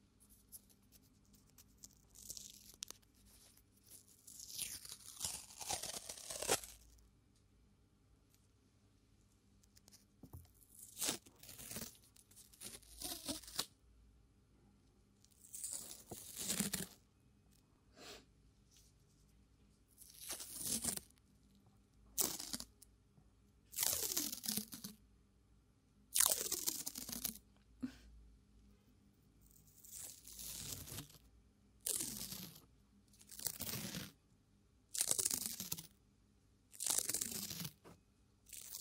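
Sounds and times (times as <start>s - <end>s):
adhesive tape being peeled and torn: 1.3s - 7.0s, 10.6s - 13.7s, 15.3s - 17.0s, 20.0s - 21.1s, 22.2s - 22.8s, 23.7s - 25.0s, 26.2s - 27.4s, 29.4s - 31.2s, 31.8s - 34.2s, 34.9s - 35.9s, 36.7s - 37.8s, 38.5s - 38.7s.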